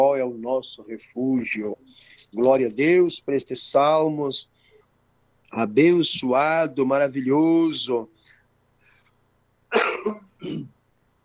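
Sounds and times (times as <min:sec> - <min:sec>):
speech: 0:00.0 - 0:04.5, 0:05.5 - 0:08.2, 0:09.7 - 0:10.8
person coughing harshly: 0:09.7 - 0:10.7.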